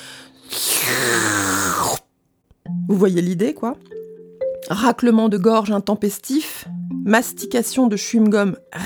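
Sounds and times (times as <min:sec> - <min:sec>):
voice imitating slurping liquid through a straw: 0:00.4 - 0:02.1
speech: 0:02.9 - 0:04.0, 0:04.7 - 0:08.8.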